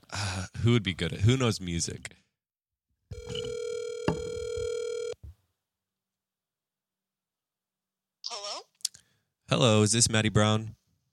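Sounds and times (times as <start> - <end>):
speech: 0.6 - 2.2, 9.5 - 10.8
phone call electronic ringback tone: 3.1 - 5.2.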